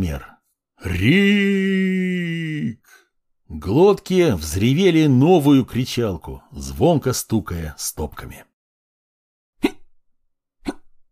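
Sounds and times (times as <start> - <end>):
speech: 0.0 - 8.5
voice imitating hiccups: 9.6 - 9.9, 10.6 - 10.9.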